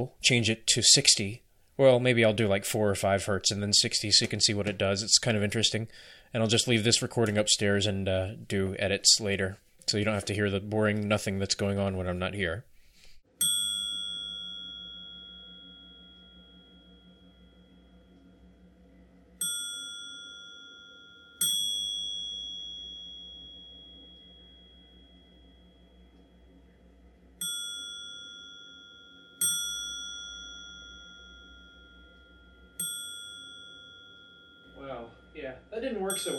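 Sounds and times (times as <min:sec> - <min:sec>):
speech: 0:00.0 - 0:12.7
low steady hum: 0:00.0 - 0:36.3
little metallic dings from a programmed device: 0:13.4 - 0:18.1, 0:19.4 - 0:26.2, 0:27.4 - 0:36.3.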